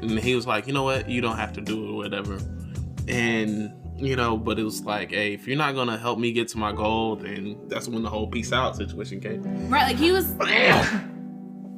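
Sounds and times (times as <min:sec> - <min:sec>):
speech: 0:00.0 - 0:11.1
sneeze: 0:10.4 - 0:11.1.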